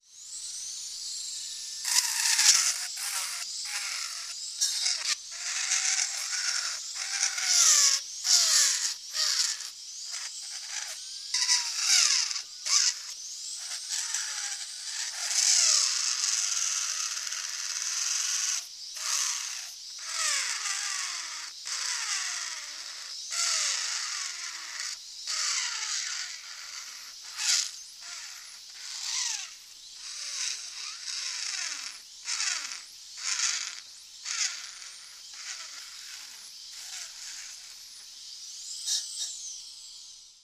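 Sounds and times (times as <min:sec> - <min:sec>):
dentist drill drilling a tooth: 0:00.0 - 0:40.4.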